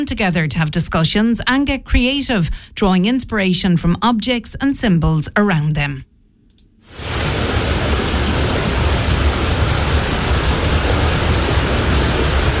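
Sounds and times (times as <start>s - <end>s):
speech: 0.0s - 6.1s
fast-flowing river water rushing: 6.9s - 12.5s.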